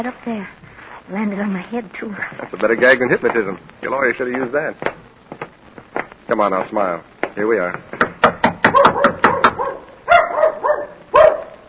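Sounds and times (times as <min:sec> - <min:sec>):
speech: 0:00.0 - 0:05.0, 0:06.3 - 0:08.0
sharp knocks: 0:07.2 - 0:09.6
dog barking: 0:08.7 - 0:11.6.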